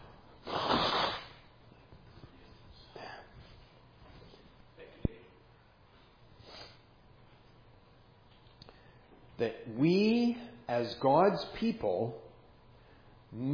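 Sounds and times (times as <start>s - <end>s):
person blowing nose: 0.4s - 1.4s
soft snuffles and sniffs: 0.4s - 1.4s
speech: 9.4s - 12.2s, 13.3s - 13.5s.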